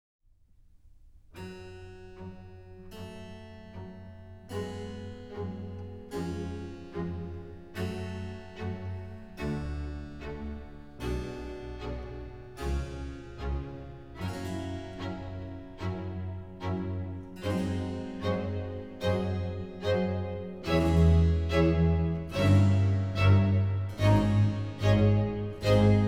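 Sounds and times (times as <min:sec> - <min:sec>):
violin concerto in G minor with spiccato: 0:05.3 - 0:26.0.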